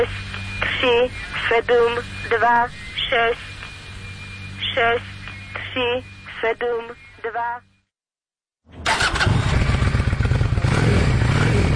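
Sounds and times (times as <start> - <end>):
speech: 0.0 - 3.5, 4.7 - 5.1, 5.8 - 7.7
Honda Shadow cruiser motorcycle engine cranking and idling: 9.5 - 11.7.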